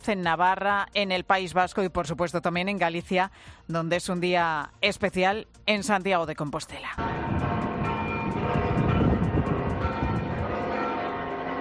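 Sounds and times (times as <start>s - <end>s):
speech: 0.0s - 7.4s
large cathedral church bells ringing: 7.0s - 11.5s.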